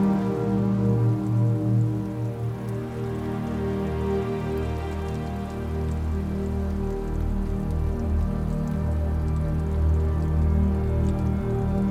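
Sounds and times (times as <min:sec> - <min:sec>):
raindrops tapping: 0:00.0 - 0:11.9.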